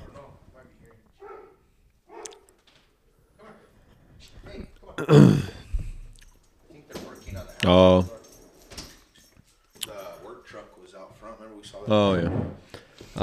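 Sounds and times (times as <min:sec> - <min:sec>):
dog giving one loud bark: 0:01.2 - 0:02.6
speech: 0:05.0 - 0:05.5, 0:07.6 - 0:08.2.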